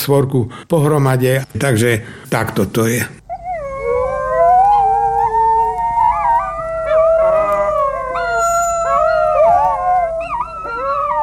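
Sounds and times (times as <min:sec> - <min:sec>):
speech: 0:00.0 - 0:03.2
higher wolf yips: 0:03.3 - 0:11.2
several wolves howling together in chorus: 0:03.4 - 0:11.2.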